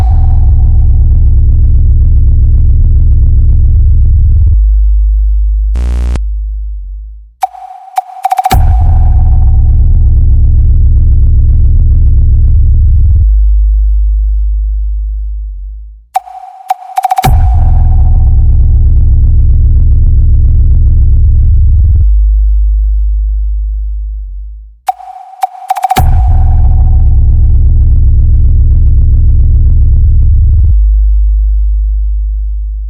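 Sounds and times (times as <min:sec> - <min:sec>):
heavy bass test tones for a sound check: 0:00.0 - 0:32.8
brief high tonal sweeps: 0:07.4 - 0:08.7, 0:16.2 - 0:18.5, 0:24.9 - 0:27.2
short sharp chirp: 0:07.4 - 0:09.5, 0:16.2 - 0:18.5, 0:24.9 - 0:27.2.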